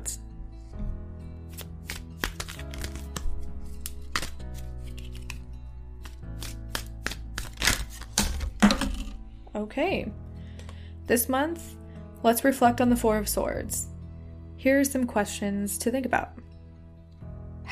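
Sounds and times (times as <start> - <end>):
soft steady music: 0.0 - 17.7
tarot deck cards shuffling: 1.5 - 9.2
speech: 9.6 - 10.2, 11.1 - 13.9, 14.6 - 16.4.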